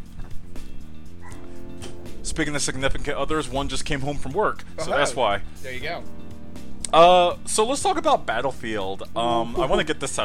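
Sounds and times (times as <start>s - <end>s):
dog barking with short yips: 1.2s - 1.5s
speech: 2.4s - 6.2s, 6.9s - 10.2s.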